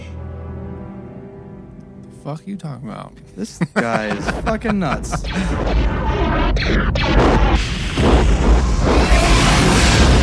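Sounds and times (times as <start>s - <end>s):
speech: 2.2s - 8.7s
laughter: 3.4s - 5.6s
heavy explosions from bombing in a film scene: 4.1s - 10.2s.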